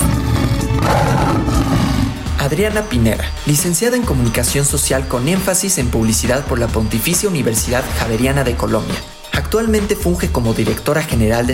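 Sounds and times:
lion roaring with a deep rumbling growl: 0:00.0 - 0:02.4
speech: 0:02.5 - 0:11.5.

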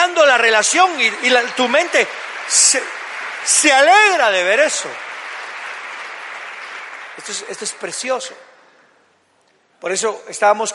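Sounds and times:
audience applauding: 0:00.0 - 0:08.4
speech: 0:00.4 - 0:05.1, 0:07.2 - 0:08.5, 0:09.8 - 0:10.7.

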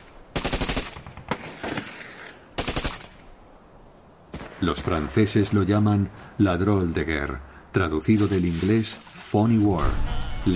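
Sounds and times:
automatic gunfire exchanged by soldiers across the Rhine: 0:00.3 - 0:01.4, 0:02.6 - 0:03.0
speech: 0:04.6 - 0:10.5.

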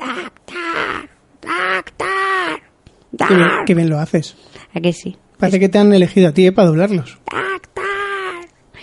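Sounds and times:
person imitating a crow's caw: 0:00.0 - 0:03.7, 0:07.2 - 0:08.5
speech: 0:03.3 - 0:07.4.

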